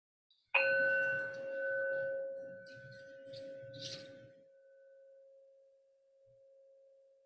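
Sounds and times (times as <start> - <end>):
bell ringing: 0.6 - 4.2.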